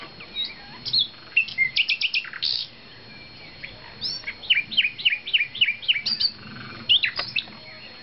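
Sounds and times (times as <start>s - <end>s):
nightingale singing in daytime: 0.0s - 8.0s.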